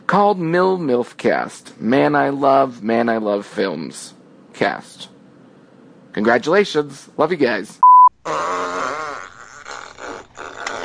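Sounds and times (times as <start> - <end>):
speech: 0.1 - 5.1, 6.1 - 8.5
long loud buzzy fart: 8.2 - 10.8.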